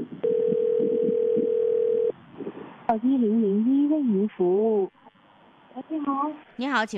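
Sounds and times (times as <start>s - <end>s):
steady mid-pitched telephone ringback tone: 0.2s - 2.2s
speech: 3.0s - 5.0s, 5.8s - 6.9s.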